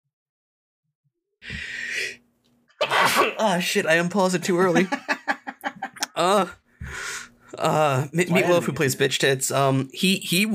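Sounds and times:
person sneezing: 2.8s - 3.5s
speech: 3.4s - 5.2s, 6.2s - 6.6s, 7.6s - 10.5s
laughter: 4.4s - 6.6s.

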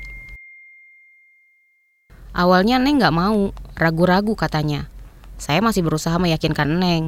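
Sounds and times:
WhatsApp message notification chime: 0.0s - 0.9s
speech: 2.4s - 7.0s.

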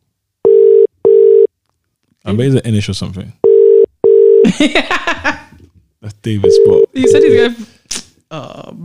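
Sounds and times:
electronic ringback tone of an outgoing phone call: 0.4s - 1.5s, 3.4s - 4.4s, 6.5s - 7.5s
speech: 2.2s - 3.4s, 4.5s - 5.4s, 6.2s - 7.7s, 8.3s - 8.8s.

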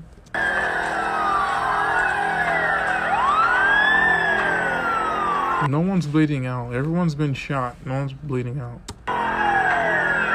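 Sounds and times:
emergency vehicle sirens wailing: 0.4s - 5.7s, 9.1s - 10.3s
speech: 5.6s - 8.9s.

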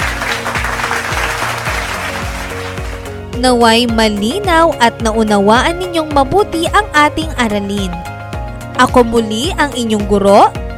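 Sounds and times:
students in a class clapping: 0.0s - 3.2s
music with a repeating low beat: 0.0s - 10.7s
speech: 3.4s - 8.1s, 8.8s - 10.6s.

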